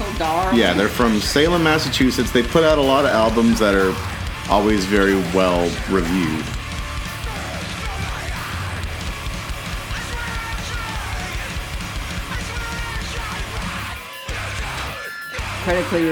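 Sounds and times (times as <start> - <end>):
harsh screamed vocals: 0.0 - 15.7
distorted guitars: 0.0 - 16.1
loud dense heavy band music: 0.0 - 16.1
pounding drums: 0.0 - 16.1
speech: 0.2 - 6.6, 15.7 - 16.1.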